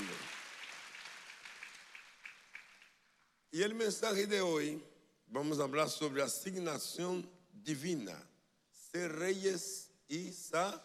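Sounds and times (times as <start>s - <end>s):
church congregation applauding: 0.0s - 3.4s
speech: 3.5s - 8.3s, 8.9s - 10.8s.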